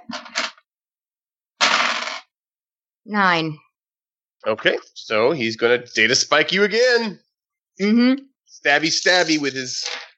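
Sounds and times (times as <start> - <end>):
dice rolling across a hard table: 1.6 - 2.3
speech: 3.1 - 3.6, 4.4 - 7.2, 7.8 - 10.1.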